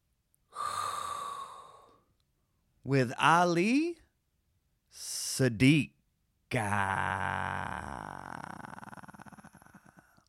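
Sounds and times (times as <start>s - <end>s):
hot breath being inhaled: 0.5s - 2.0s
speech: 2.8s - 4.0s, 4.9s - 8.5s.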